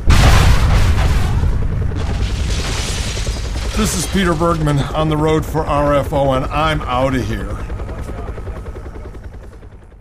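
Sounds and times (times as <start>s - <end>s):
Hellfire missile strike explosion: 0.0s - 4.6s
heavy booming rumble of missile strike explosion: 0.0s - 6.9s
speech: 3.8s - 7.7s.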